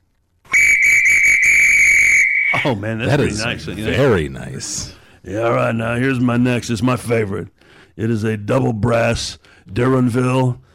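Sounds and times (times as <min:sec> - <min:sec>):
Carlton 320C whistle blown in a shrill blast with a faint pulsing trill: 0:00.5 - 0:02.6
speech: 0:02.6 - 0:10.7.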